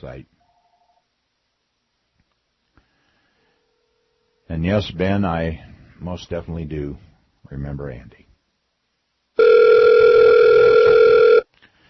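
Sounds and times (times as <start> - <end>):
speech: 0.0 - 0.4, 4.5 - 8.2
telephone line tone as a call connects: 9.4 - 11.5.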